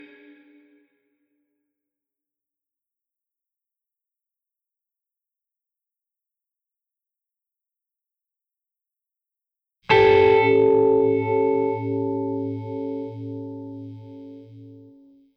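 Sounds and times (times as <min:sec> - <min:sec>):
blues guitar ending: 0:09.9 - 0:14.9.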